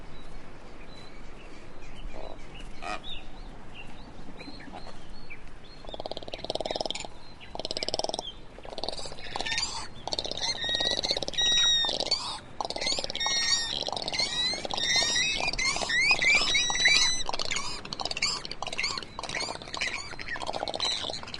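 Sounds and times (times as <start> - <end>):
swallow twittering: 5.8 - 21.3.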